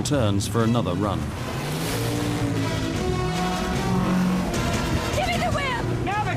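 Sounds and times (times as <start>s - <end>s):
speech: 0.0s - 1.6s
speedboat engines roaring while racing and swerving: 0.0s - 6.3s
rushing water and spray: 1.2s - 3.5s.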